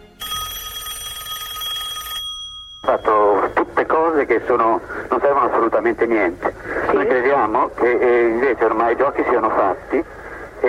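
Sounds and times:
telephone bell ringing: 0.0 - 4.2
faint hum: 2.6 - 10.6
speech: 2.9 - 10.6.

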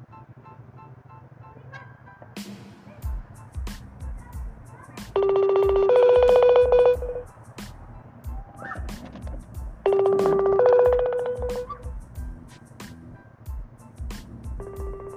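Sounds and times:
phone ringing tone of a call being placed: 5.2 - 7.3, 9.9 - 11.7, 14.6 - 15.1.

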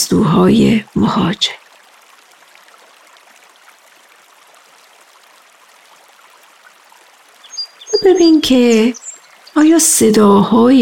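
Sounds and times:
river water flowing: 0.0 - 10.8
speech: 0.1 - 1.6, 8.0 - 9.0, 9.6 - 10.8
faint chirp: 7.4 - 9.7.

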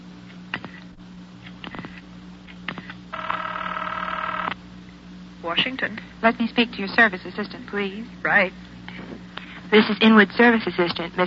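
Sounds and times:
faint hum: 0.0 - 11.2
steady electronic telephone line tone: 3.1 - 4.6
speech: 5.4 - 8.7, 9.7 - 11.2.

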